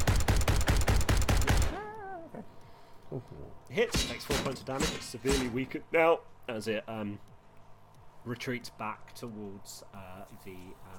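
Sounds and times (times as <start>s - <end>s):
autocannon firing burst: 0.0s - 1.8s
speech: 3.1s - 7.3s, 8.2s - 10.9s.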